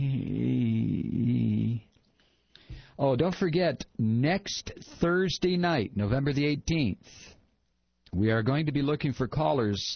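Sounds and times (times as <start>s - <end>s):
person snoring: 0.0s - 1.9s
speech: 3.0s - 7.4s, 8.1s - 9.9s.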